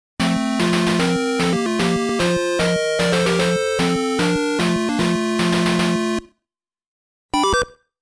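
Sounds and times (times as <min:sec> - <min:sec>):
NES FDS jingle: 0:00.2 - 0:06.2.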